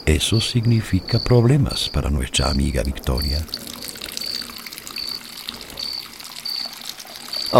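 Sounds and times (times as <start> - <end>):
speech: 0.0 - 3.7
water pouring into a water tank: 2.5 - 7.5.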